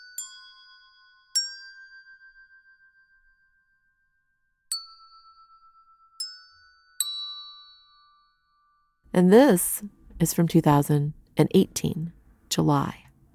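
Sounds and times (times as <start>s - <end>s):
small bells ringing: 0.0s - 3.8s, 4.7s - 9.0s
speech: 9.1s - 13.0s.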